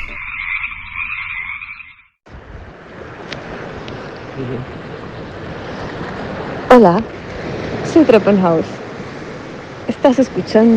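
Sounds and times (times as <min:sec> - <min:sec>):
frog buzzing croak: 0:00.0 - 0:01.9
loud continuous rush of surf-like noise: 0:02.3 - 0:10.7
speech: 0:04.4 - 0:04.9, 0:06.7 - 0:07.2, 0:07.9 - 0:08.8, 0:09.9 - 0:10.7.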